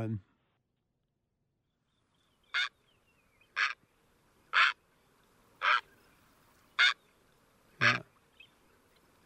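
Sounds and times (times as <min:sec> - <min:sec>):
speech: 0:00.0 - 0:00.3
green heron harsh throaty guttural calls: 0:02.5 - 0:02.8, 0:03.5 - 0:03.8, 0:04.5 - 0:04.8, 0:05.6 - 0:06.0, 0:06.8 - 0:07.0, 0:07.8 - 0:08.5.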